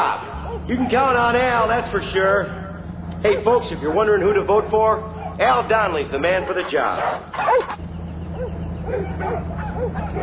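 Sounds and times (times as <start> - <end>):
truck engine rumbling: 0.0 - 10.2
dogs barking at a truck: 0.2 - 2.6, 5.0 - 10.2
speech: 0.7 - 2.6, 3.2 - 7.8.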